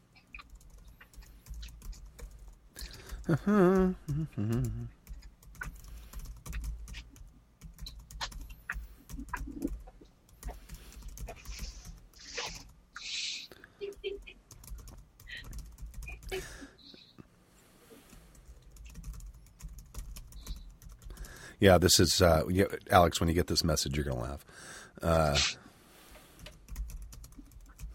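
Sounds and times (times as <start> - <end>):
typing on a computer keyboard: 0.3 - 3.3, 4.4 - 12.8, 13.8 - 16.4, 18.3 - 21.4, 26.4 - 27.9
short harmonic vocal sound: 3.3 - 5.0
speech: 3.3 - 5.0, 21.6 - 25.6.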